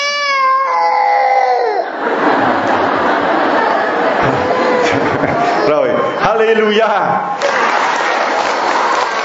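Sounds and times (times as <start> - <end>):
baby crying during a church service: 0.0 - 2.0, 4.4 - 5.0
laughter: 1.6 - 6.2, 7.4 - 9.2
murmur and chatter of a crowd: 1.6 - 9.2
speech: 6.4 - 7.3.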